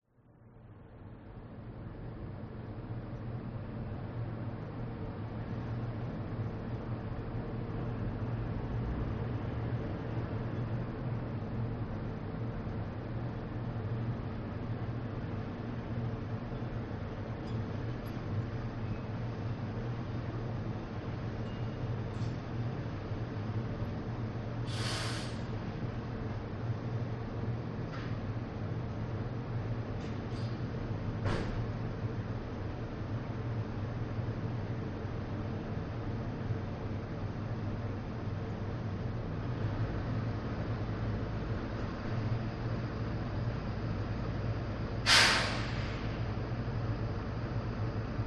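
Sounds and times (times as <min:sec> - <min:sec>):
city ambience: 0:00.3 - 0:48.2
garbage truck: 0:24.6 - 0:25.5, 0:31.2 - 0:31.6, 0:45.0 - 0:46.4.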